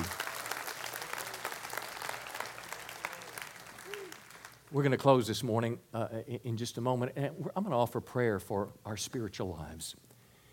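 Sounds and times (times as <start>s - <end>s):
church audience applauding: 0.0s - 4.8s
speech: 4.7s - 10.1s.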